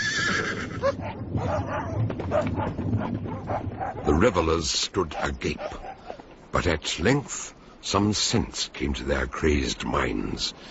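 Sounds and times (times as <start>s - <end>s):
horse whinnying: 0.0s - 2.5s
hounds barking in short sharp yelps: 0.8s - 4.4s, 5.1s - 6.3s
speech: 2.3s - 5.9s, 6.5s - 10.6s.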